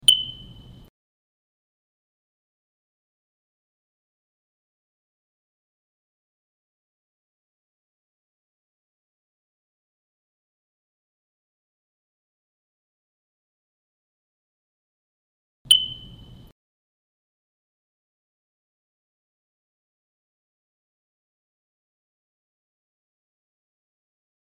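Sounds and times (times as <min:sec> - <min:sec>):
low battery chirp: 0:00.0 - 0:00.9, 0:15.7 - 0:16.5.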